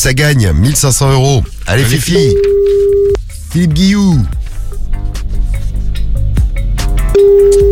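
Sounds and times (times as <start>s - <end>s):
speech: 0.0s - 4.4s
outgoing call telephone ringing tone: 2.1s - 3.2s, 7.2s - 7.7s
busy punchy music bed: 3.2s - 7.7s.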